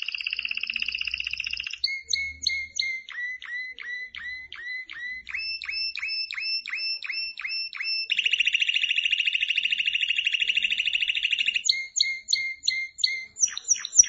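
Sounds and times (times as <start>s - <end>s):
canary singing with whistled notes and rapid pulsing trill: 0.0s - 14.0s.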